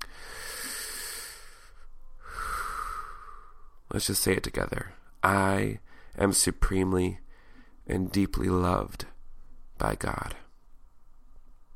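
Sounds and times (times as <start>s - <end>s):
group drawing deep breaths in unison: 0.0s - 3.8s, 7.3s - 7.8s
speech: 3.9s - 7.2s, 7.9s - 9.1s, 9.8s - 10.4s.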